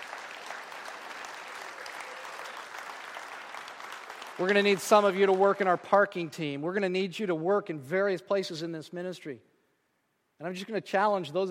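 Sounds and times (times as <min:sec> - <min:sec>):
large crowd applauding: 0:00.0 - 0:06.4
speech: 0:04.4 - 0:09.5, 0:10.4 - 0:11.5.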